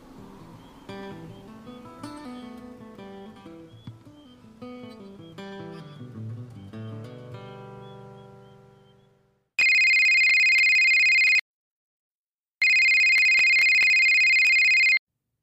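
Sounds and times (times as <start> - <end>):
telephone ringing before voicemail picks up: 9.6 - 11.4, 12.6 - 15.0.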